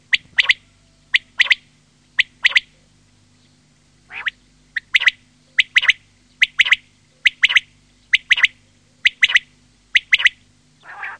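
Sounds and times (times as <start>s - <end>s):
quail repeating clipped three-note phrases: 0.1s - 2.9s, 4.1s - 11.1s.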